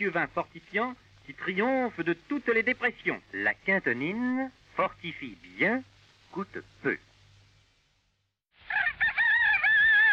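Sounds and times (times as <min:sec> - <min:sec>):
speech: 0:00.0 - 0:07.1
rooster crowing: 0:08.6 - 0:10.1.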